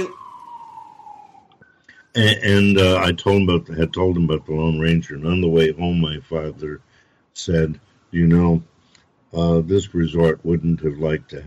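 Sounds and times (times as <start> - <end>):
speech: 0.0 - 0.2, 2.1 - 8.7, 9.3 - 11.4
emergency vehicle siren: 0.0 - 6.3.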